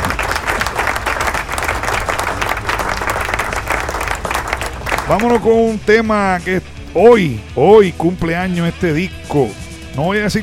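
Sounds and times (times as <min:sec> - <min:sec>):
crowd applauding and cheering: 0:00.0 - 0:05.8
speech: 0:05.1 - 0:10.4.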